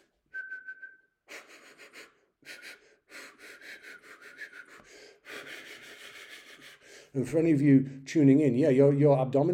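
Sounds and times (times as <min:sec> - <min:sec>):
person whistling a high note: 0:00.3 - 0:01.4, 0:03.5 - 0:06.6
speech: 0:07.1 - 0:09.5.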